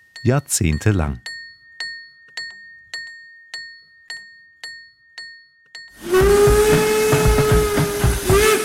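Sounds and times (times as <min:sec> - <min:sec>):
railway warning signal bell ringing: 0:00.0 - 0:06.2
speech: 0:00.2 - 0:01.3
steam whistle blasting: 0:06.0 - 0:08.6.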